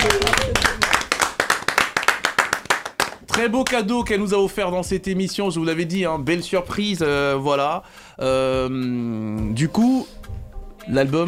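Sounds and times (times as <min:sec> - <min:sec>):
audience clapping in unison at end of broadcast show: 0:00.0 - 0:04.0
speech: 0:03.4 - 0:10.2, 0:10.9 - 0:11.2.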